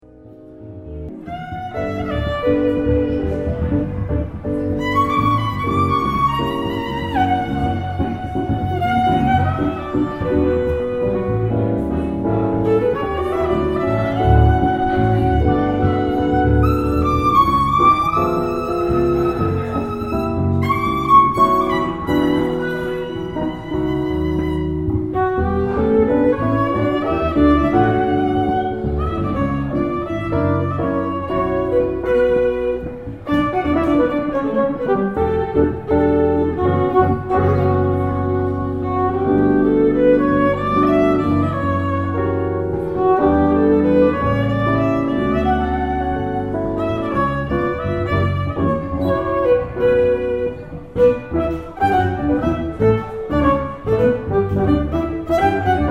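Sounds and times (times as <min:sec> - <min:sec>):
violin in Spain: 0:00.4 - 0:55.8.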